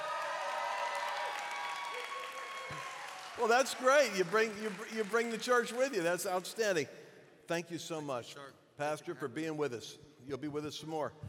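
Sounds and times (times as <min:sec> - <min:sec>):
faint cheers: 0:00.0 - 0:04.3
crowd applauding: 0:00.0 - 0:06.6
speech: 0:03.4 - 0:11.2.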